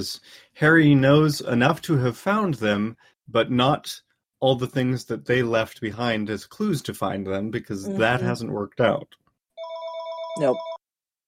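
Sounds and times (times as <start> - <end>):
speech: 0.0 - 9.2, 10.4 - 10.7
telephone ringing with a steady electronic tone: 9.6 - 10.8.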